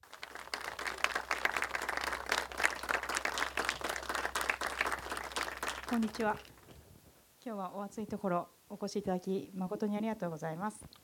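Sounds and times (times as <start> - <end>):
audience applause welcoming speakers: 0.0 - 6.6
speech: 5.9 - 6.5, 7.4 - 11.0.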